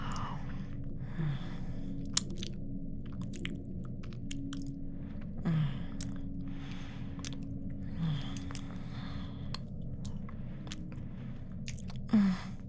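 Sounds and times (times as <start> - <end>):
steady low hum: 0.0 - 12.6
wet chewing with crunchy bites while eating: 2.0 - 6.2, 7.1 - 12.2.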